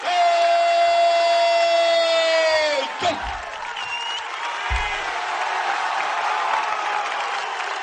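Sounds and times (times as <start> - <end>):
crowd cheering and shouting at a ceremony: 0.0 - 7.8.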